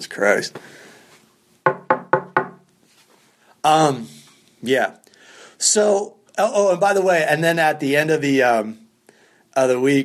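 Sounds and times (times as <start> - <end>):
speech: 0.0 - 0.9, 3.6 - 5.0, 5.6 - 8.8, 9.6 - 10.0
knuckles knocking on a hard cement wall: 1.7 - 2.6.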